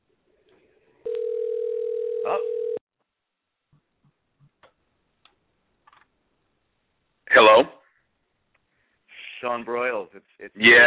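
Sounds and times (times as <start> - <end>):
telephone dial tone while a call is dialing: 1.1 - 2.8
speech: 9.6 - 10.8.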